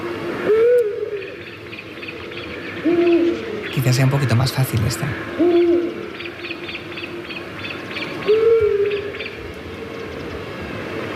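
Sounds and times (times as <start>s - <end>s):
owl hooting: 0.4s - 4.0s, 5.0s - 10.2s
speech: 3.8s - 5.6s.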